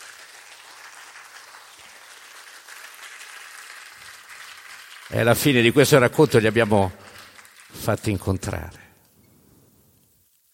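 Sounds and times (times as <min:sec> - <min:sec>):
audience applause at a live storytelling event: 0:00.0 - 0:08.7
speech: 0:05.1 - 0:07.0, 0:07.9 - 0:08.8.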